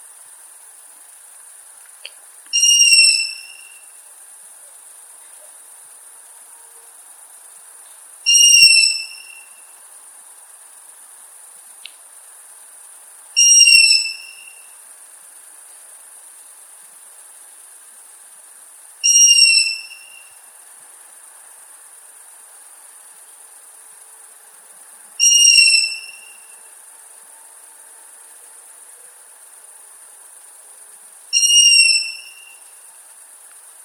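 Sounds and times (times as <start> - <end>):
young long-eared owl: 2.5 - 4.0, 8.3 - 9.8, 13.4 - 14.8, 19.0 - 20.4, 25.2 - 26.6, 31.3 - 32.9.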